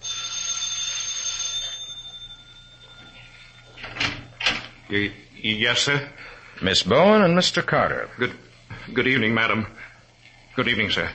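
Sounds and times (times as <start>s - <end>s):
doorbell ringing with a bright metallic tone: 0.0s - 4.5s
speech: 4.9s - 9.9s, 10.6s - 11.1s.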